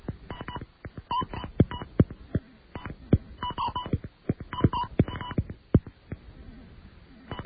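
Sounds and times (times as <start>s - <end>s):
touch-tone telephone keypad beeps dialing a number: 0.3s - 1.9s, 2.8s - 5.4s.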